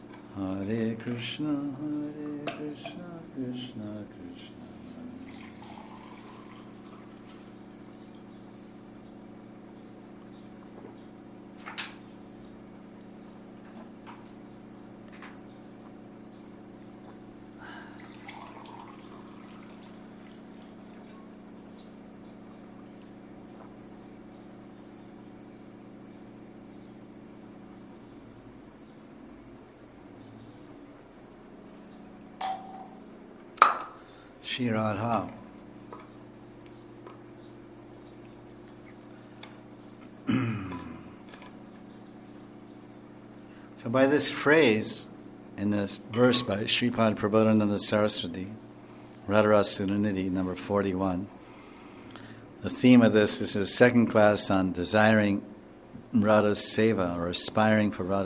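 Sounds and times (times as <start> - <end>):
speech: 0.4 - 4.6, 34.6 - 35.3, 43.8 - 48.6, 49.3 - 51.4, 52.6 - 55.5, 56.1 - 58.2
water pouring softly into a glass: 5.2 - 7.2, 17.9 - 20.1
faint glass clinks: 32.4 - 33.0
sharper knock of glass: 32.4 - 33.0.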